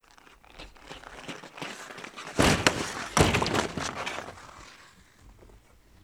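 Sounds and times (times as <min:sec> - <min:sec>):
hockey skate on ice: 0:00.0 - 0:06.0
puck hitting hockey board: 0:02.3 - 0:04.6.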